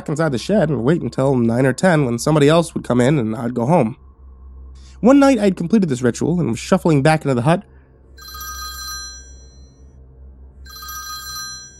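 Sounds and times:
speech: 0.0s - 4.0s, 5.0s - 8.4s
steady low hum: 0.0s - 11.7s
telephone bell ringing: 8.2s - 9.8s, 10.6s - 11.7s.

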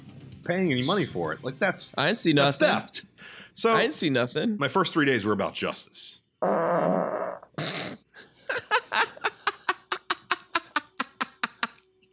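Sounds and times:
speech: 0.5s - 7.7s
low rasping fart: 6.4s - 8.1s
laughter: 8.2s - 11.8s.

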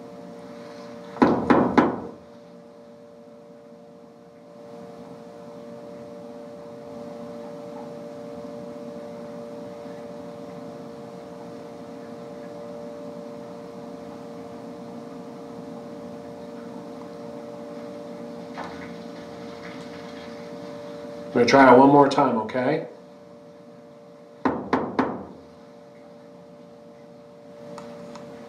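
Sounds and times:
steady low electrical hum: 0.0s - 28.4s
knocking on a wall in a knocking game: 1.2s - 2.2s, 24.4s - 25.3s
speech: 21.4s - 22.9s.

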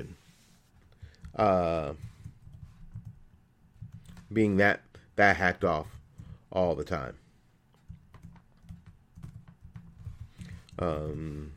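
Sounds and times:
speech: 0.0s - 0.2s, 1.4s - 2.1s, 4.3s - 7.2s, 10.8s - 11.5s
typing on a computer keyboard: 2.0s - 4.3s, 7.8s - 11.5s.

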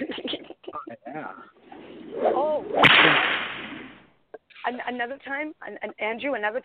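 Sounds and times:
whip crack sound effect played from a soundboard: 2.7s - 4.0s
speech: 4.7s - 6.6s.

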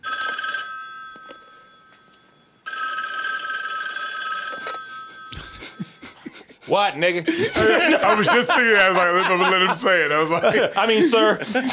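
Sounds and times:
telephone bell ringing: 0.0s - 6.2s
laughter: 4.6s - 11.7s
speech: 6.7s - 11.7s.

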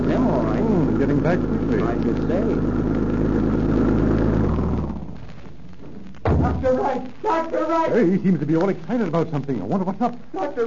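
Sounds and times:
car engine rumbling as the vehicle pulls up: 0.0s - 5.2s
speech: 1.0s - 2.9s, 6.6s - 10.6s.

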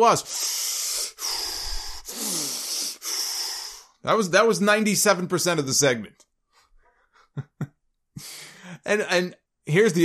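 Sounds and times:
speech: 0.0s - 0.6s, 4.0s - 6.2s, 8.9s - 10.0s
man breathing heavily with harsh raspy breaths: 0.2s - 4.0s, 8.2s - 8.9s.

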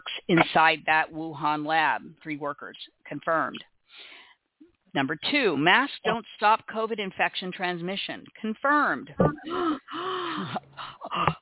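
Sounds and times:
speech: 0.3s - 3.7s, 4.9s - 11.4s
dramatic vocal gasp: 9.3s - 11.4s.

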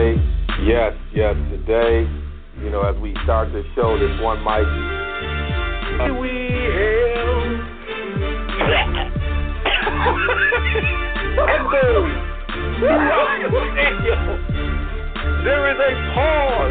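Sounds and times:
steady low musical backing: 0.0s - 16.6s
speech: 0.7s - 5.1s, 6.0s - 6.4s, 10.0s - 12.2s, 12.8s - 14.7s, 15.4s - 16.6s
laughter: 8.6s - 12.2s, 12.8s - 14.6s
man coughing heavily in a stadium: 9.6s - 10.9s.

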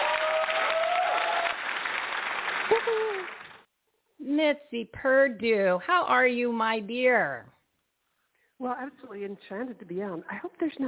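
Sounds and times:
faint whoops and voices: 0.0s - 1.6s, 2.7s - 3.4s
audience applause: 0.0s - 3.6s
speech: 2.8s - 3.4s, 4.2s - 7.5s, 8.6s - 10.8s.

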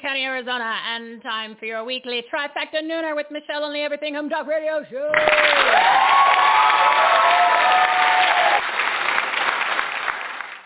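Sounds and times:
speech: 0.0s - 7.8s
live studio audience clapping: 5.1s - 10.6s.

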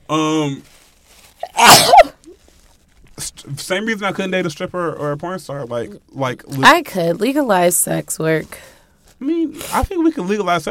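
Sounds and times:
speech: 0.1s - 0.7s, 3.7s - 10.7s
person sneezing: 1.4s - 2.2s.

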